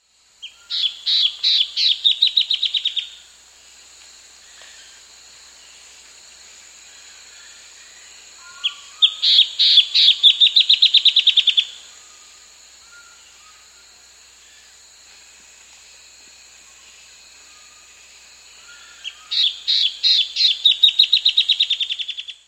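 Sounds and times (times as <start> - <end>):
Striated Antbird calling in South America: 0.4 - 3.2, 6.9 - 14.8, 18.5 - 22.4.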